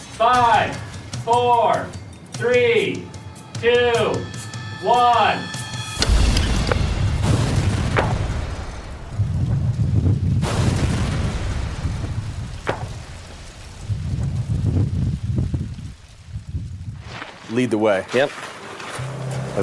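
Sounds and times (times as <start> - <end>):
speech: 0.2 - 5.5, 17.6 - 18.5
reconstructed car bomb explosion with deep rolling rumble: 6.0 - 16.0
sharp cracks: 6.0 - 16.2.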